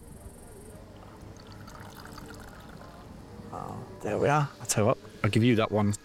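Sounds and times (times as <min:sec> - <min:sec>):
faint murmur: 0:00.0 - 0:06.0
hot water poured into a teacup: 0:01.0 - 0:03.1
speech: 0:04.0 - 0:06.0.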